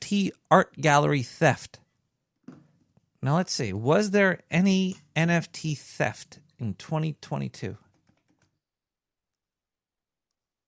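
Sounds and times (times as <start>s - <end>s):
speech: 0.1s - 1.8s, 3.2s - 7.8s
typing a search on a computer keyboard: 7.8s - 8.6s.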